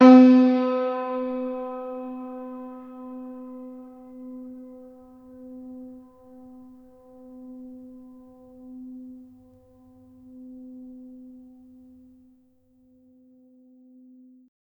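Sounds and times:
long piano note: 0.0 - 8.3.

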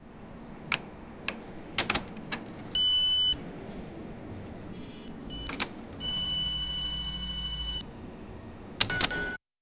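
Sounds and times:
retail cash register scanner beep: 2.6 - 3.5, 4.7 - 7.8, 8.8 - 9.4.

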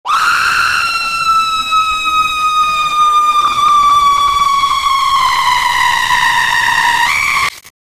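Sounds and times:
scary person screaming: 0.0 - 7.6.

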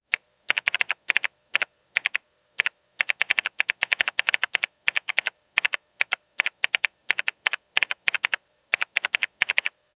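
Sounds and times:
clean electronic typing: 0.5 - 9.8.

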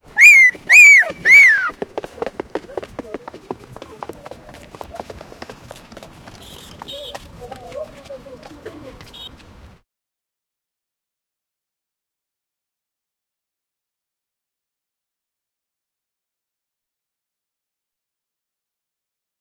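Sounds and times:
fast footsteps on street: 0.2 - 9.8.

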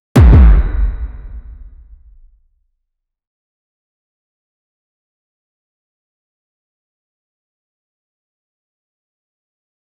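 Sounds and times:
punch impact in close combat: 0.2 - 2.4.

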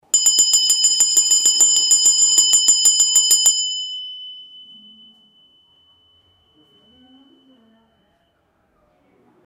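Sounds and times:
restaurant call bell ringing: 0.0 - 8.4.

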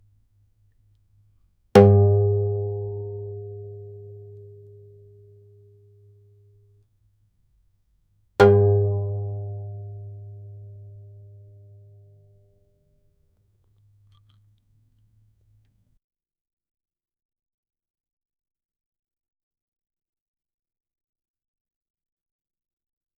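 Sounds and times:
single one-shot banjo note: 1.8 - 5.6, 8.4 - 12.3.

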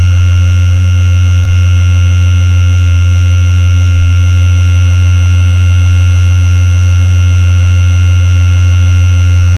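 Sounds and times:
motors humming: 0.0 - 9.5.

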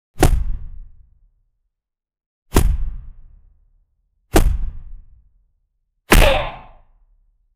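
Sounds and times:
classic punch impact: 0.2 - 0.7, 2.5 - 3.1, 4.3 - 4.9, 6.1 - 6.8.

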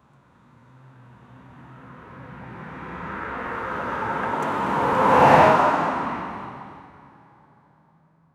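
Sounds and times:
cinematic car passing by: 1.0 - 7.4.

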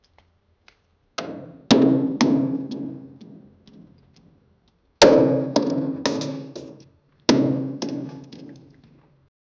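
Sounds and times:
desert door being hit: 1.2 - 3.1, 5.0 - 8.7.

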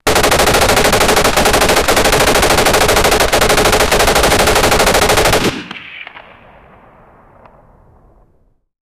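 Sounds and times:
120mm machine gun firing: 0.0 - 6.6.

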